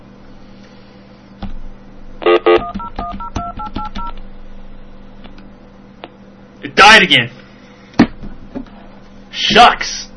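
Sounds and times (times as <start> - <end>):
low steady hum: 0.0 - 10.1
telephone keypad dual-tone beeps dialing a hotline number: 2.3 - 4.2
speech: 6.9 - 7.4, 9.4 - 10.1.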